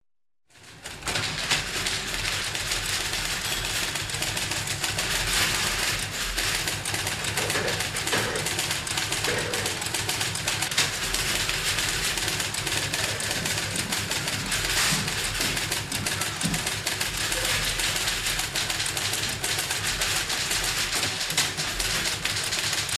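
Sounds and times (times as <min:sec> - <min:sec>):
office ambience: 0:00.6 - 0:22.9
typewriter typing: 0:00.6 - 0:22.9.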